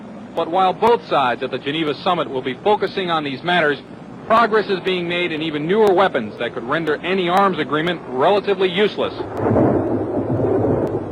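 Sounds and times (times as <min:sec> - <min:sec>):
speech: 0:00.4 - 0:09.7
deep rumble of thunder from a lightning strike: 0:09.0 - 0:11.1.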